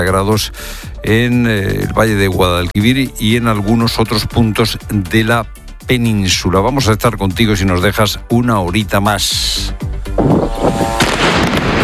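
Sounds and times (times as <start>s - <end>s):
speech: 0.0s - 11.0s
artillery fire at night in Lebanon: 11.0s - 11.8s
gunfire at night in Lebanon: 11.0s - 11.8s.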